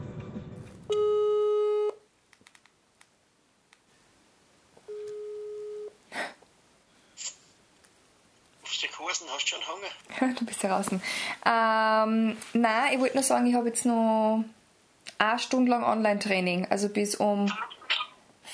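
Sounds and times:
telephone ringback tone as a call is placed: 0.9s - 2.0s, 4.9s - 5.9s
soft clicks and rustles on a phone line: 2.3s - 3.9s
speech: 9.7s - 14.6s, 15.2s - 17.7s.

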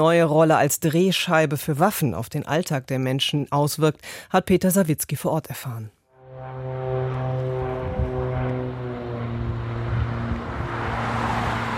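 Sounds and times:
speech: 0.0s - 6.0s
propeller plane circling in a grey sky over a city: 6.2s - 11.7s
faint traffic from cars on the road to the airport: 6.5s - 11.7s.

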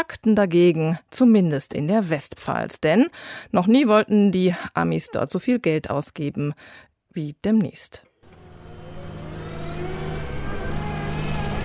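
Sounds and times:
speech: 0.0s - 8.1s
heavy truck engine accelerating into a construction site: 8.2s - 11.6s.

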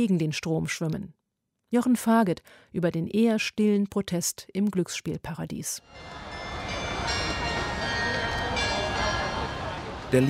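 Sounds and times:
speech: 0.0s - 6.4s
outdoor bustle: 5.9s - 10.2s
post office carillon chimes on Senado Square in Macau: 5.9s - 10.2s
tourist crowd murmur: 5.9s - 10.2s.

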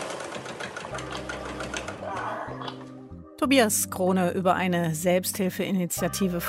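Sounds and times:
sewing machine stitching cloth face masks: 0.0s - 2.2s
speech: 1.0s - 1.4s, 3.4s - 6.4s.

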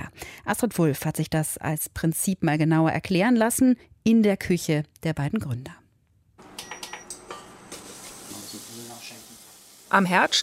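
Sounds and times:
speech: 0.5s - 5.8s, 9.9s - 10.4s
mustard seeds popping and sizzling in hot oil in a pan: 6.4s - 10.4s.

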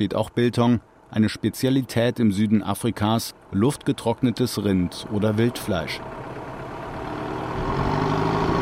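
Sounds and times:
speech: 0.0s - 6.2s
bus large diesel engine idling: 2.7s - 8.5s.

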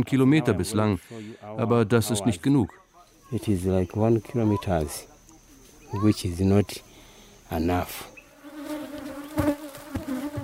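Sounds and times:
speech: 0.0s - 5.1s, 5.9s - 6.9s, 7.5s - 8.1s
many bees buzzing around beehives: 7.7s - 10.4s
individual bees whirring past: 8.3s - 10.4s.

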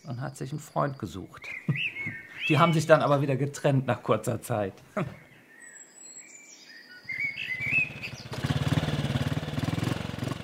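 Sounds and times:
birds chirping: 0.0s - 9.4s
speech: 0.1s - 5.2s
motorcycle with a sidecar speeding along a winding road: 7.6s - 10.4s.

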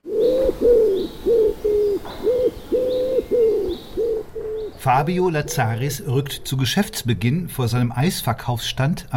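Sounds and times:
pigeons cooing: 0.0s - 7.1s
speech: 4.8s - 9.1s.

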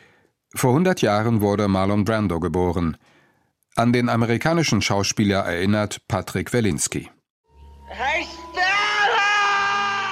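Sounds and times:
speech: 0.5s - 3.1s, 3.8s - 7.2s
man screaming in a film scene: 8.6s - 10.0s.

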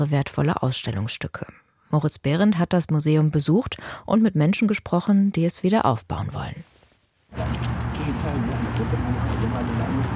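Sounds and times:
speech: 0.0s - 6.7s, 7.3s - 10.1s
busy outdoor noise in Khartoum: 5.8s - 10.1s
keys jingling on a man's waistband while walking at the National Museum in Khartoum: 7.4s - 10.1s.

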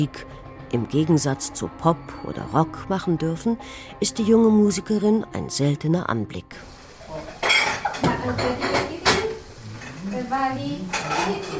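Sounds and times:
speech: 0.0s - 6.8s, 8.0s - 8.8s, 10.2s - 11.5s
pots, pans and cutlery clattering at a home kitchen stove: 7.1s - 10.1s, 10.7s - 11.5s.

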